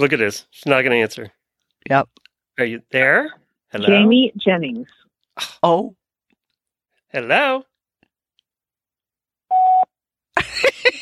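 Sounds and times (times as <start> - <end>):
speech: 0.0 - 6.0, 7.1 - 7.7, 10.4 - 11.0
voicemail beep after an unanswered phone call: 9.5 - 9.9.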